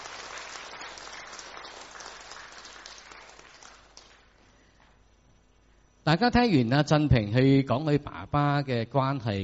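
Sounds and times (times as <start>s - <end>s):
audience applause: 0.0s - 4.2s
speech: 6.1s - 9.4s.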